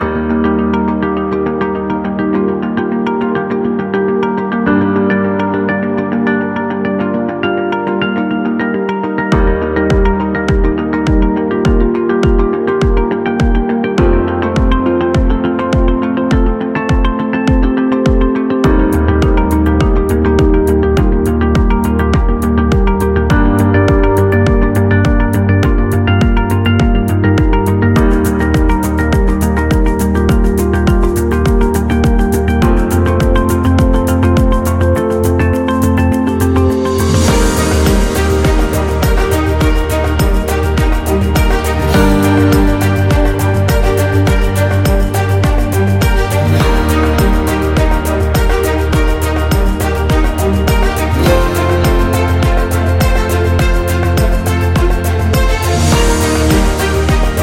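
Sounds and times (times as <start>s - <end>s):
corporate strings music: 0.0s - 57.4s.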